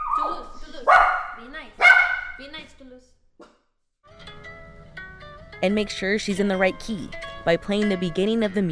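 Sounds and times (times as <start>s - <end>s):
dogs barking and yipping: 0.0s - 2.4s
speech: 0.2s - 1.8s, 2.4s - 3.6s, 5.6s - 8.7s.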